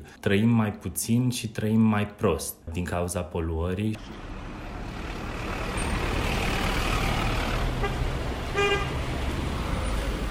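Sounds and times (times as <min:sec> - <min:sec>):
speech: 0:00.2 - 0:04.3
busy street traffic with engines rumbling: 0:04.0 - 0:10.2
short car horn honk: 0:07.8 - 0:09.0.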